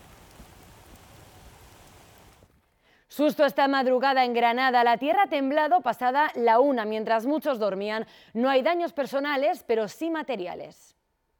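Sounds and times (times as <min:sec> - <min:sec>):
heavy downpour of rain and hail on a road: 0:00.0 - 0:02.5
speech: 0:03.1 - 0:11.0.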